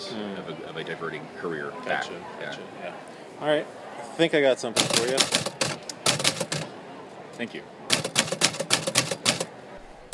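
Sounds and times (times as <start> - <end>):
speech: 0.1 - 5.5, 7.4 - 7.8
typewriter clacking: 4.8 - 6.7, 7.9 - 10.1.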